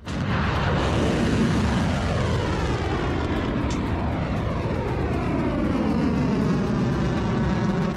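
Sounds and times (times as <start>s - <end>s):
solid-fuel medium-range ballistic missile launching: 0.0s - 7.9s.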